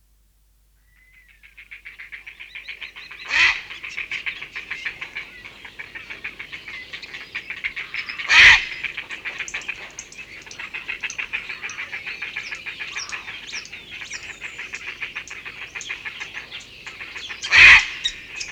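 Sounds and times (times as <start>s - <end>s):
grey heron call: 1.0s - 18.5s.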